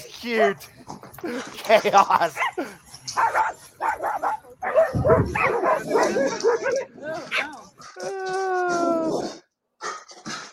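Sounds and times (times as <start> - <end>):
speech: 0.2 - 3.6
laughter: 1.1 - 2.9
several dogs barking and yipping while playing: 2.3 - 8.1
dog whining: 4.8 - 9.3.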